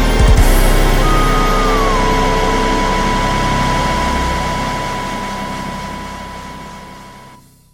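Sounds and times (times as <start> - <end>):
game over boss music: 0.2 - 6.0.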